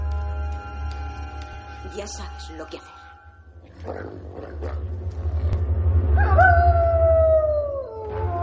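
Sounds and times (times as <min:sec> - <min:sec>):
speech: 0:01.8 - 0:03.0, 0:03.8 - 0:05.0
steady low rumble: 0:02.8 - 0:08.4
wolf howling: 0:06.1 - 0:08.4.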